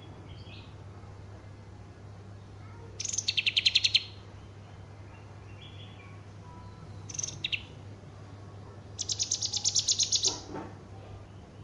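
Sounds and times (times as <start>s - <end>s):
low background hum: 0.0s - 11.6s
Horsfield's bush lark giving high rapidly repeated chirping notes: 3.0s - 4.6s, 7.0s - 7.8s, 9.0s - 10.5s.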